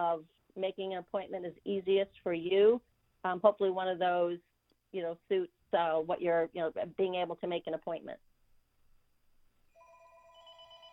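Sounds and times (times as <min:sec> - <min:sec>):
speech: 0:00.0 - 0:08.3
telephones ringing with an electronic trill: 0:09.8 - 0:10.9.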